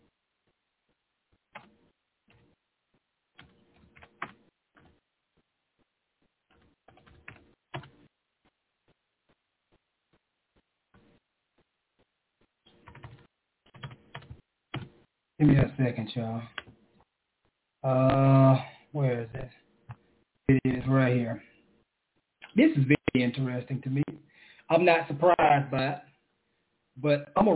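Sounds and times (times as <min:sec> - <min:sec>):
typing on a computer keyboard: 0:01.5 - 0:02.5, 0:03.4 - 0:05.0, 0:06.5 - 0:08.0, 0:12.7 - 0:15.0
speech: 0:15.4 - 0:16.6, 0:17.8 - 0:19.6, 0:22.6 - 0:24.0, 0:24.7 - 0:26.1, 0:27.0 - 0:27.5.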